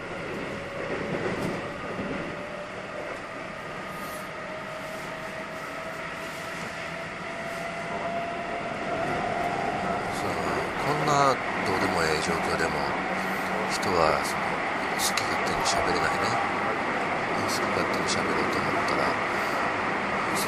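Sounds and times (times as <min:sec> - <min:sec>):
moving railway car rumble: 0:00.0 - 0:20.4.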